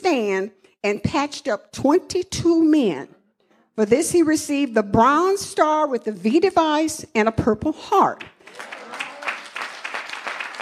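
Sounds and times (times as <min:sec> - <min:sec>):
speech: 0:00.1 - 0:03.2, 0:03.8 - 0:08.8
crowd applauding: 0:08.4 - 0:10.6.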